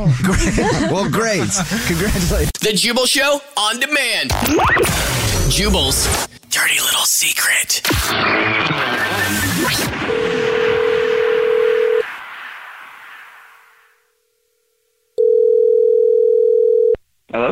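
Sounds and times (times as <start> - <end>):
speech: 0.0 - 10.0
laughter: 0.2 - 2.4
telephone ringback tones of a call going out to a listener: 10.1 - 12.0, 15.2 - 17.0.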